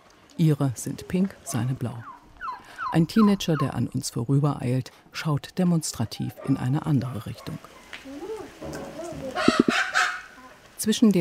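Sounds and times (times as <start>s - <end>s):
steady low background: 0.0s - 11.1s
speech: 0.4s - 2.1s, 2.9s - 9.8s, 10.8s - 11.1s
chicken clucking: 8.6s - 10.2s
crow-like poultry call: 9.4s - 10.5s.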